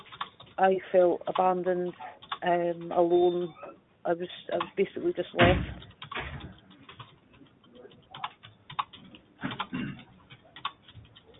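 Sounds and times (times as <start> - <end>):
typing notes on a computer keyboard: 0.0 - 0.6, 2.2 - 3.1, 5.7 - 11.3
speech: 0.6 - 5.9.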